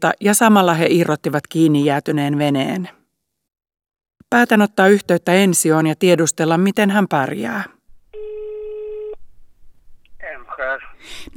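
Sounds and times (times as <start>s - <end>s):
speech: 0.0s - 3.0s, 4.3s - 7.8s, 11.0s - 11.3s
telephone ringback tone while placing a call: 8.2s - 9.2s.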